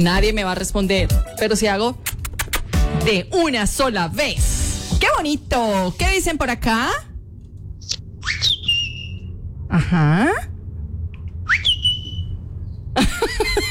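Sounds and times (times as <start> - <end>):
speech: 0.0 - 2.1, 3.0 - 7.1, 9.7 - 10.5
person whistling a call: 8.2 - 9.2, 11.5 - 12.3
laughter: 9.7 - 10.4, 13.0 - 13.7.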